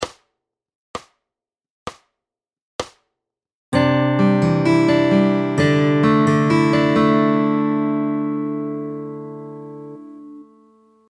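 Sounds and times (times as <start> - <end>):
fingerstyle guitar chords: 3.8 - 11.0.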